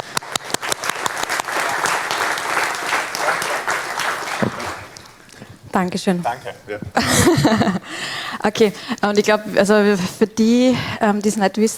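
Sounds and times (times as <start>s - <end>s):
audience applause: 0.0s - 9.1s
laughter: 0.7s - 11.7s
speech: 5.8s - 11.7s.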